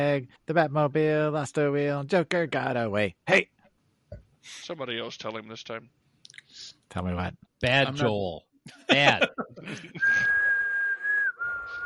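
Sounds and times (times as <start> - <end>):
speech: 0.0 - 3.6, 4.4 - 6.0, 6.6 - 10.3
laughter: 8.8 - 10.5
person whistling a show tune: 10.0 - 11.8.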